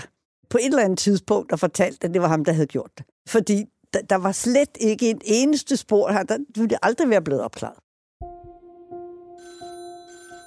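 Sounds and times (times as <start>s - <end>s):
speech: 0.5s - 7.8s
telephone ringing with a steady electronic tone: 9.4s - 10.4s.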